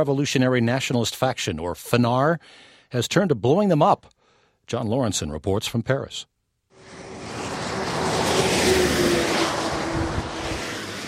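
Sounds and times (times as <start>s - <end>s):
speech: 0.0s - 7.0s
car passing with engine and tyre noise: 6.7s - 11.0s
steady road traffic: 6.7s - 11.0s.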